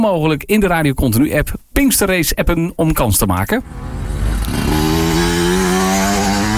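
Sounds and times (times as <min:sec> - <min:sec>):
speech: 0:00.0 - 0:04.9
motocross motorcycle engine revving: 0:03.6 - 0:06.5.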